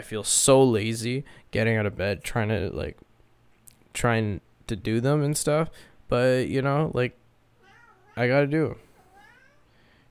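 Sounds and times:
speech: 0:00.0 - 0:03.1, 0:04.0 - 0:07.2, 0:08.2 - 0:08.8
loud drawn-out cat meow: 0:07.6 - 0:08.3, 0:08.9 - 0:09.7.

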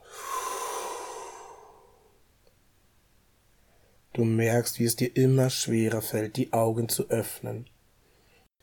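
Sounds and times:
slow soft breath drawn in and let out: 0:00.0 - 0:02.2, 0:03.6 - 0:04.1, 0:08.0 - 0:08.5
speech: 0:04.2 - 0:07.7.

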